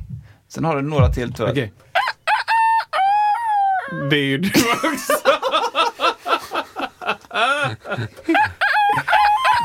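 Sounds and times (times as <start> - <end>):
speech: 0.6 - 1.9, 4.1 - 5.3, 7.4 - 8.6
roosters crowing in the morning: 2.0 - 3.8, 8.3 - 9.6
people laughing: 4.4 - 9.6.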